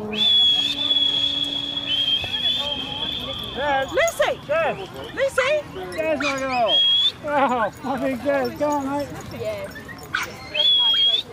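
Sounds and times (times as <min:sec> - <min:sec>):
person whistling a high note to call a dog: 0:00.0 - 0:04.0, 0:06.7 - 0:07.2
faint noise: 0:00.0 - 0:11.3
speech: 0:03.8 - 0:10.3.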